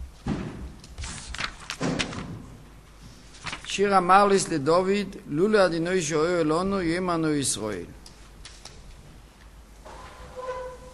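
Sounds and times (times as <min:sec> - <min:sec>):
door slamming shut with a heavy thud: 0:01.8 - 0:02.4
speech: 0:03.8 - 0:08.0.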